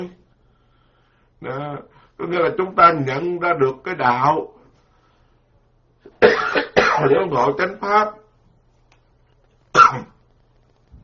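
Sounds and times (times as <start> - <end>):
speech: 0.0 - 0.2, 1.4 - 4.6, 6.1 - 8.2, 9.9 - 10.1
person coughing during a Buddhist dharma lecture: 6.1 - 7.3, 9.8 - 10.2.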